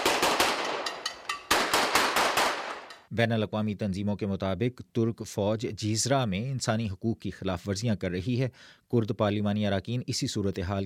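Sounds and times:
automatic gunfire bursts in streets: 0.0s - 0.9s, 1.5s - 2.9s
speech: 3.1s - 10.8s.

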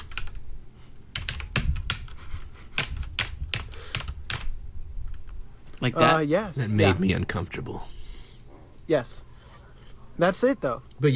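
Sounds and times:
typing on a mechanical keyboard: 0.0s - 0.4s, 1.1s - 2.2s, 2.8s - 4.5s
speech: 5.8s - 8.0s, 8.9s - 9.3s, 10.2s - 11.1s.

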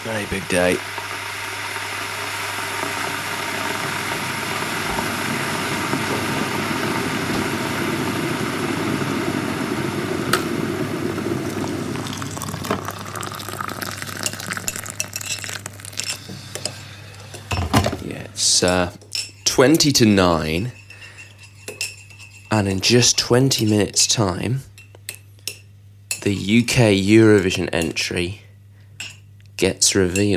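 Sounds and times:
speech: 0.0s - 1.0s, 18.6s - 19.0s, 19.6s - 20.8s, 22.6s - 24.7s, 26.2s - 28.4s, 29.6s - 30.3s
electric kettle ticking and crackling near the boil: 0.0s - 16.8s
electric kettle heating water with rumbling roar: 0.0s - 18.8s.

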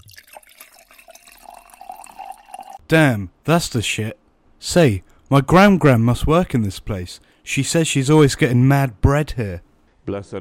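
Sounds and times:
liquor poured into a glass: 0.0s - 2.8s
speech: 2.9s - 10.3s.

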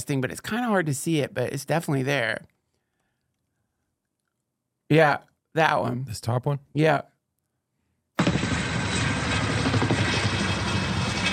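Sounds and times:
speech: 0.0s - 2.6s, 4.9s - 7.1s
military helicopter engine roar: 8.2s - 11.3s.

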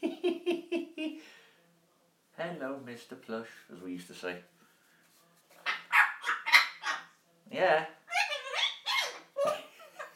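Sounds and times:
speech: 2.4s - 4.6s, 7.5s - 8.0s
parrot squawking and calling: 5.6s - 7.1s, 8.1s - 9.4s.

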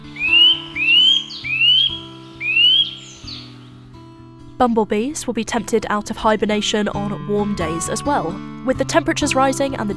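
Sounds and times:
nut-caching woodland bird giving upward-sliding whistled calls: 0.0s - 3.7s
speech: 4.6s - 9.9s.

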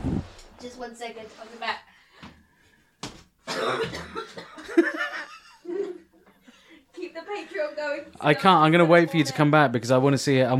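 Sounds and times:
speech: 0.6s - 1.9s, 3.6s - 5.4s, 7.1s - 10.5s
person coughing: 3.5s - 4.8s.

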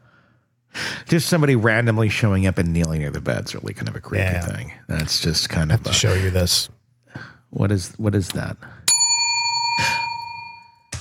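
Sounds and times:
speech: 1.1s - 6.8s, 7.5s - 8.8s
bell ringing: 8.9s - 10.9s.

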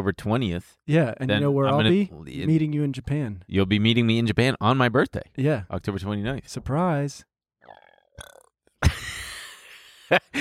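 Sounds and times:
speech: 0.0s - 9.0s, 10.1s - 10.4s
loud unforced burp: 7.6s - 8.6s.

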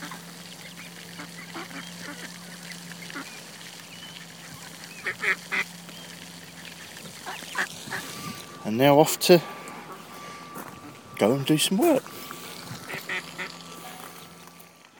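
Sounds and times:
steady low hum: 0.0s - 14.9s
ducks quacking outdoors: 0.8s - 3.4s, 4.3s - 5.8s, 6.4s - 11.1s, 11.8s - 14.4s
speech: 8.7s - 9.6s, 11.2s - 12.2s.

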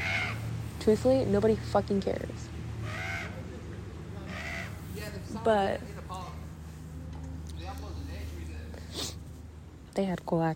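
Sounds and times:
crow cawing: 0.0s - 0.5s, 2.8s - 3.5s, 4.2s - 4.9s
low hum: 0.0s - 10.5s
speech: 0.8s - 2.6s, 5.4s - 5.9s, 10.0s - 10.5s.

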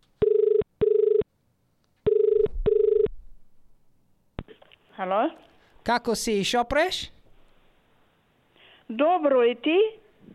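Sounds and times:
outgoing phone call ringback tone: 0.2s - 1.2s, 2.1s - 3.1s
speech: 5.0s - 7.2s, 8.9s - 10.0s.

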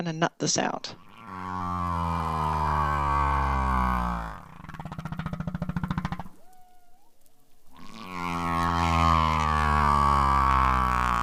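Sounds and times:
speech: 0.0s - 1.0s
humpback whale pulsed grunts: 1.0s - 6.3s, 7.8s - 11.2s
male humpback whale song: 1.0s - 11.2s.

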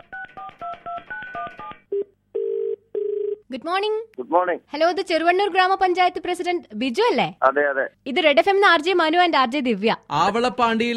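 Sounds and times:
telephone ringing tone: 0.0s - 3.4s
short lower telephone tone: 1.9s - 3.4s
speech: 3.5s - 10.9s.

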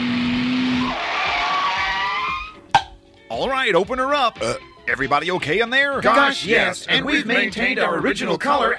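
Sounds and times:
car skidding with screeching tires: 0.0s - 2.7s
speech: 3.6s - 8.7s.

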